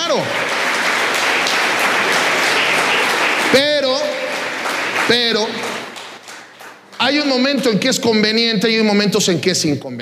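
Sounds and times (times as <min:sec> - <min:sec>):
dense applause from a sizable audience: 0:00.0 - 0:07.5
speech: 0:00.1 - 0:00.4, 0:03.5 - 0:03.7, 0:05.1 - 0:05.7, 0:07.0 - 0:09.9.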